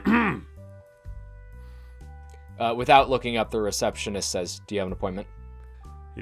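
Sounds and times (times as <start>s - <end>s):
person performing a voiced throat clear: 0.0s - 0.5s
speech: 2.6s - 5.4s.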